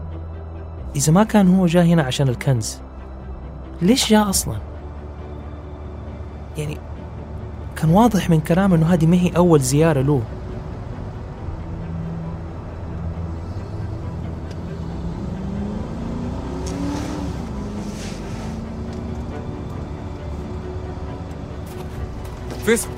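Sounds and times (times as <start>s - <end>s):
speech: 0.9s - 2.9s, 3.8s - 4.7s, 6.6s - 6.9s, 7.8s - 10.4s, 22.7s - 22.9s
group of cars approaching with engines revving: 6.2s - 22.9s.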